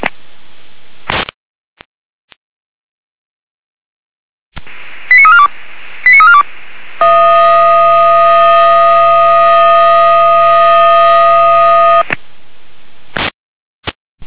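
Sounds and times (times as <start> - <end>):
faint radio static: 4.6 - 13.1
fire brigade radio multi-tone alert blaring: 6.1 - 6.4, 7.0 - 12.0
fire brigade radio alarm short beeps: 7.0 - 12.0.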